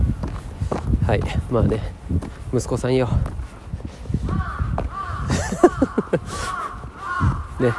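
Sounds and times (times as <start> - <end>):
faint footsteps: 0.0 - 7.7
speech: 1.1 - 3.4, 7.6 - 7.7
crow cawing outdoors: 4.2 - 7.7
laughter: 5.3 - 6.8.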